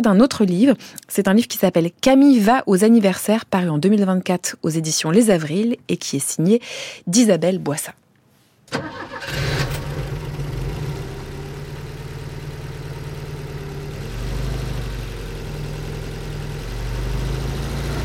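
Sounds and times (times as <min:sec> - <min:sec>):
speech: 0:00.0 - 0:08.0, 0:08.7 - 0:09.8
old Volvo estate car engine cranking and idling: 0:08.7 - 0:18.0.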